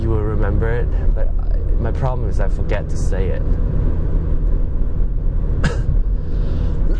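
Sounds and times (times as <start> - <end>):
low rumbling hum of a car driving: 0.0 - 6.9
speech: 0.5 - 4.1
person coughing from a lingering cold: 5.6 - 6.0.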